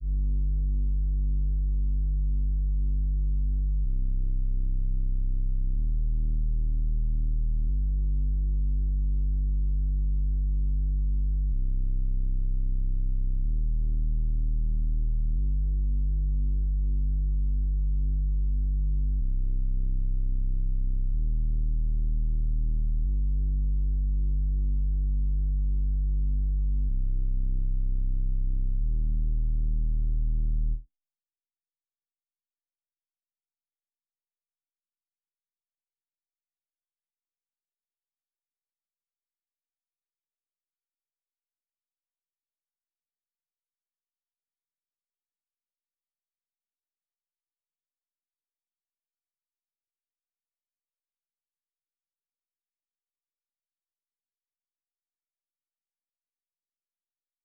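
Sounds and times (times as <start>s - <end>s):
acid bass melody in G minor: 0.0s - 30.8s.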